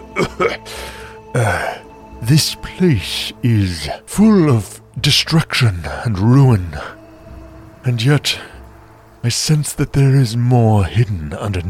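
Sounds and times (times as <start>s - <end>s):
person coughing: 0.2s - 0.7s
speech: 0.2s - 7.0s, 7.8s - 8.5s, 9.2s - 11.6s.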